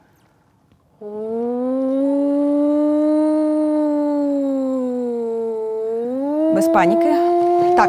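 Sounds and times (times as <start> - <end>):
speech: 1.0 - 1.3, 6.6 - 7.8
air raid warning siren wailing: 1.0 - 7.8.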